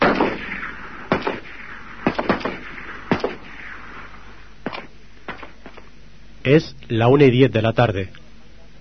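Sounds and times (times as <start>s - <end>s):
gunshots fired by soldiers inside school classrooms: 0.0s - 5.9s
low rumble: 0.0s - 8.7s
speech: 6.5s - 8.2s.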